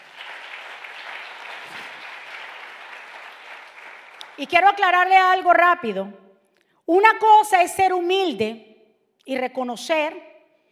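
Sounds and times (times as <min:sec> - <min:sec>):
crowd applauding loudly: 0:00.0 - 0:04.4
speech: 0:04.4 - 0:06.2, 0:06.9 - 0:10.3.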